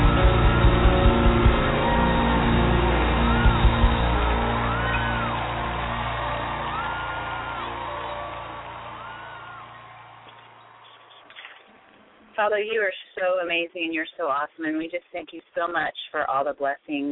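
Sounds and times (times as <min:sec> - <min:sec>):
rising whoops from the crowd: 0:00.0 - 0:11.9
large crowd cheering and screaming: 0:00.0 - 0:12.2
speech: 0:12.4 - 0:17.1.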